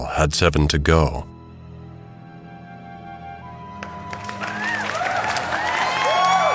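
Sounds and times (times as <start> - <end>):
speech: 0.0 - 1.3
people clapping: 3.8 - 6.5
large crowd cheering: 3.9 - 6.5.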